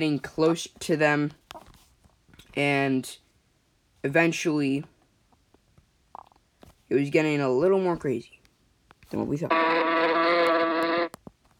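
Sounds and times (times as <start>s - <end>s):
speech: 0.0s - 1.4s, 2.6s - 3.2s, 4.0s - 4.9s, 6.9s - 8.4s, 9.1s - 9.9s
loud insect buzzing: 9.5s - 11.1s.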